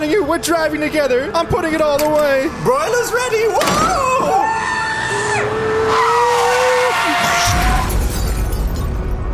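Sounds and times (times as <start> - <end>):
speech: 0.2 - 4.5
tires screeching: 3.5 - 8.2
shattering debris: 7.4 - 9.2.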